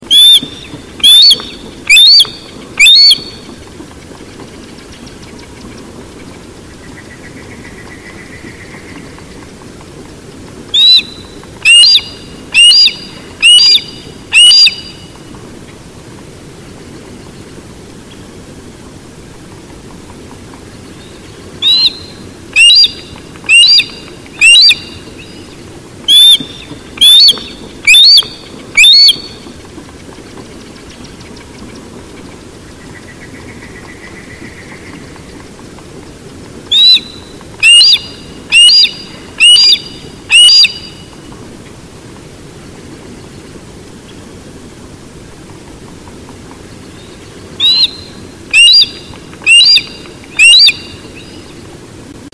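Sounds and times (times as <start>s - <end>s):
Parabuteo unicinctus calling: 0.1s - 3.4s, 10.8s - 15.0s, 21.6s - 25.3s, 26.1s - 29.4s, 36.7s - 41.0s, 47.6s - 51.3s.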